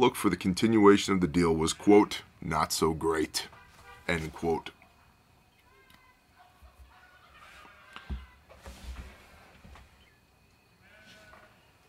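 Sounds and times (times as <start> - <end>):
speech: 0.0 - 4.8
sheep bleating: 10.8 - 11.6.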